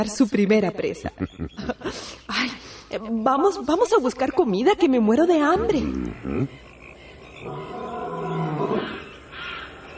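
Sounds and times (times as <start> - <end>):
speech: 0.0 - 6.6
tiger growl: 5.6 - 9.9
tiger roaring: 7.4 - 9.2.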